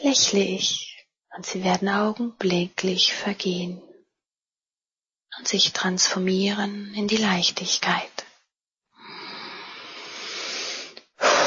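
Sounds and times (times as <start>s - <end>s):
speech: 0.0s - 3.9s, 5.4s - 8.2s
slow deep breathing during meditation: 9.0s - 11.4s.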